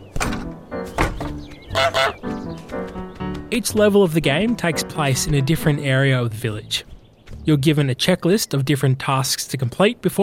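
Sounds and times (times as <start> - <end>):
video game goose honking: 1.6 - 2.4
speech: 3.5 - 10.2.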